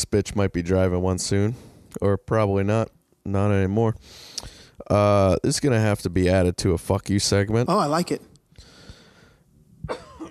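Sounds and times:
speech: 0.1 - 8.3
person coughing: 9.8 - 10.3.

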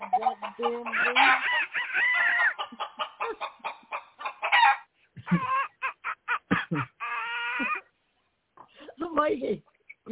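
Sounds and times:
chicken clucking while attacking a man: 0.0 - 7.9
speech: 0.6 - 1.6.

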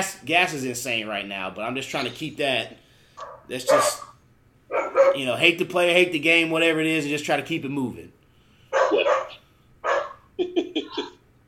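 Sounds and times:
speech: 0.0 - 4.1, 4.9 - 8.2
dog barking: 3.2 - 5.2, 8.7 - 10.3.

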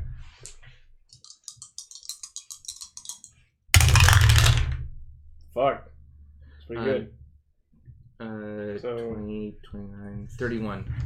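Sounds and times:
plastic dice rolling through a dice tower: 1.2 - 4.8
speech: 5.6 - 5.9, 6.7 - 7.2, 8.2 - 11.0.

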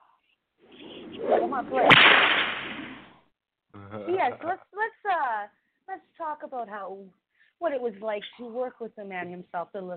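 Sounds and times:
rising swish: 0.8 - 3.2
whip crack: 1.4 - 3.1
speech: 1.5 - 2.2, 3.9 - 9.9.

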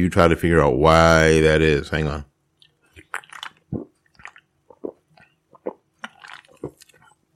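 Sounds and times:
speech: 0.0 - 2.3
smacking mouth noises: 2.6 - 7.1
sipping and slurping a fizzy drink: 2.6 - 7.2.

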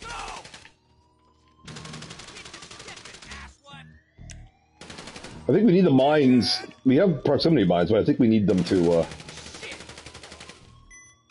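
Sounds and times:
rapid automatic gunfire in an online video game casino heist mission: 1.7 - 3.6, 4.8 - 5.5, 8.5 - 10.7
speech: 5.5 - 9.2.

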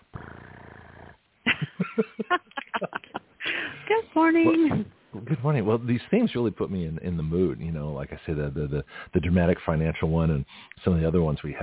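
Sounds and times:
voice imitating cat purring: 0.0 - 1.2
laughter: 1.5 - 3.8
speech: 2.0 - 3.0, 3.9 - 11.6.

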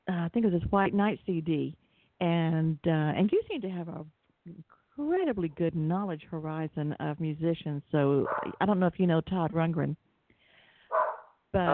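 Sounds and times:
faint background noise: 0.0 - 11.7
speech: 0.3 - 10.0, 11.5 - 11.7
dog barking in a studio: 8.2 - 8.6, 10.9 - 11.7.

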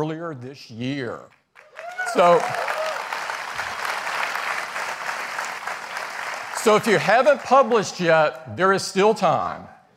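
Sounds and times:
speech: 0.0 - 1.4, 2.1 - 2.7, 6.6 - 9.8
large audience applause: 1.6 - 7.9.

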